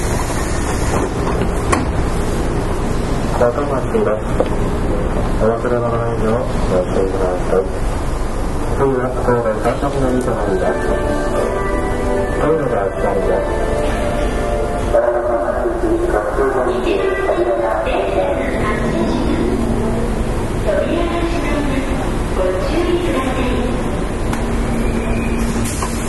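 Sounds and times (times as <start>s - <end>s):
Sanyo Electric Railway 5000 series train running gear rumbling: 0.0s - 26.0s
voices of an onboard announcement or passengers talking: 5.2s - 25.5s.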